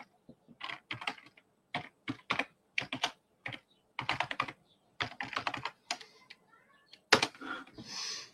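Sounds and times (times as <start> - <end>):
typing an email address on a computer keyboard: 0.0 - 7.4.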